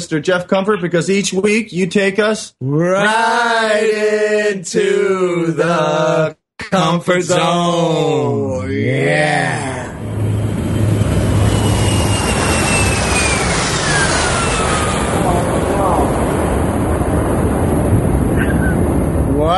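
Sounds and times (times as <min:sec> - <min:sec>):
speech: 0:00.0 - 0:09.6
jet airliner roaring as it takes off: 0:08.6 - 0:19.5
high jet engine whines sliding downward in pitch: 0:08.9 - 0:19.4.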